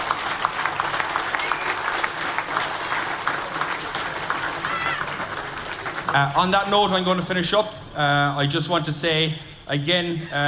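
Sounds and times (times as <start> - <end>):
large crowd applauding the outgoing chairperson of a county board: 0.0 - 7.2
speech: 6.1 - 10.4.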